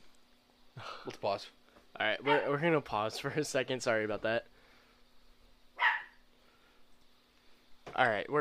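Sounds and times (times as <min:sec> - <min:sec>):
speech: 0:00.8 - 0:04.5, 0:08.0 - 0:08.4
puppy barking: 0:02.2 - 0:02.6, 0:05.8 - 0:06.2.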